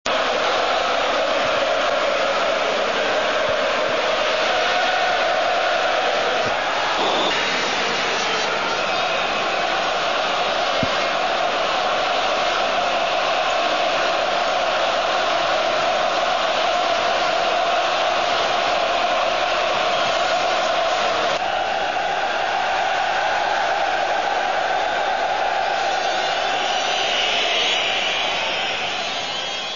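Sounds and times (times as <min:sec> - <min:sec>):
football stadium ambience: 0:00.0 - 0:29.7.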